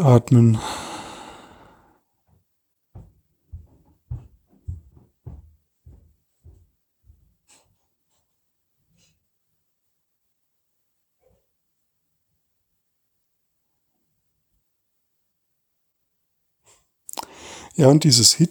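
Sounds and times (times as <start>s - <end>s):
speech: 0.0s - 0.7s, 17.8s - 18.5s
deep breathing in and out through the nose and mouth: 0.5s - 2.0s, 17.1s - 17.8s.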